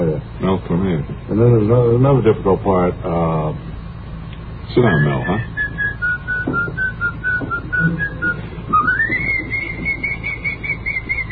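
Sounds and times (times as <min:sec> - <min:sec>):
low steady rumble: 0:00.0 - 0:11.2
speech: 0:00.5 - 0:03.7, 0:04.7 - 0:05.5
person whistling a tune: 0:04.9 - 0:11.2.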